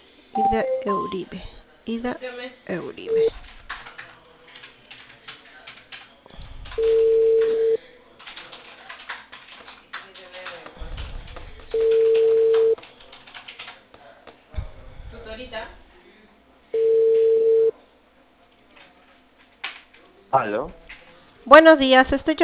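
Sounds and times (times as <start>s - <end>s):
murky low noise: 0.0s - 22.4s
busy tone from a cut-off telephone call: 0.4s - 1.2s, 6.8s - 7.8s, 11.8s - 12.8s, 16.8s - 17.7s
speech: 0.4s - 3.6s, 20.5s - 20.8s, 21.5s - 22.4s.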